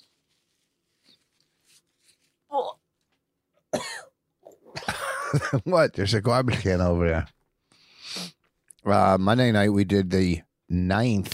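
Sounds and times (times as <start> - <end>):
speech: 5.3 - 7.4, 8.9 - 11.3
man blowing his nose: 7.9 - 8.4.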